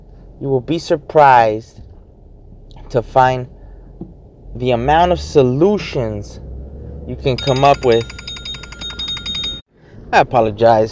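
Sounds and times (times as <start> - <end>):
speech: 0.4 - 1.8, 2.9 - 6.4, 7.1 - 8.2, 10.1 - 10.8
phone ringing with a work call: 7.4 - 9.6.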